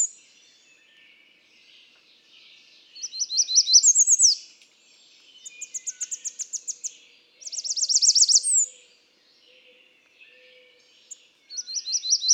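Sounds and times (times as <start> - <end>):
American redstart song: 0.0 - 12.3.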